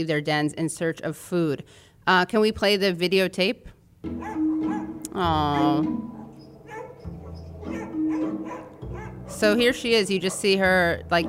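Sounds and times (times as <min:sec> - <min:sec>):
speech: 0:00.0 - 0:04.4, 0:05.1 - 0:06.2, 0:09.3 - 0:11.2
excited dogs barking and yipping: 0:04.1 - 0:10.8.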